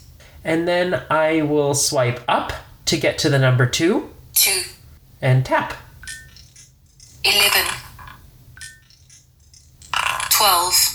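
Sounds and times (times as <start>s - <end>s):
speech: 0.4s - 5.8s, 7.2s - 7.8s
digital dice roll effect in a dice-rolling app: 6.1s - 10.7s.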